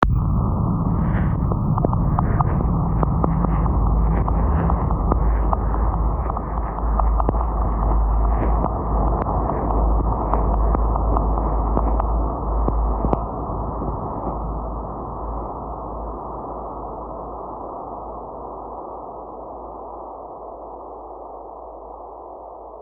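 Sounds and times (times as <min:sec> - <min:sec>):
heavy radiation ambience: 0:00.0 - 0:22.8.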